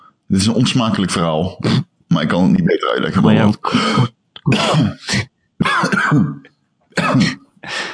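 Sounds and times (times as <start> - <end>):
speech: 0.3 - 7.8
throaty clearing bursts: 3.6 - 7.5
harsh heavy coughing: 3.6 - 7.9.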